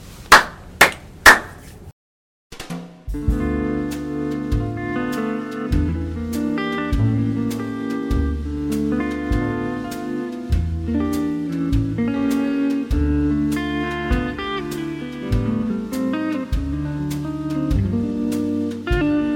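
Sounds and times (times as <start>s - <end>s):
hand claps: 0.3s - 1.7s
instrumental music: 2.5s - 19.3s.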